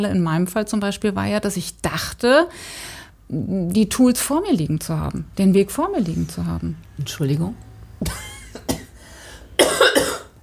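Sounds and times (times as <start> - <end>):
speech: 0.0 - 8.3
harsh coughs: 8.0 - 9.0, 9.6 - 10.4.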